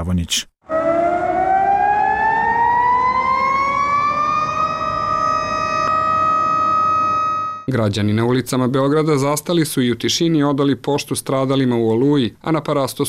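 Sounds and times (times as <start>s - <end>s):
speech: 0.0s - 0.8s, 7.7s - 13.0s
city civil defense sirens wailing in Belgrade: 0.6s - 7.7s.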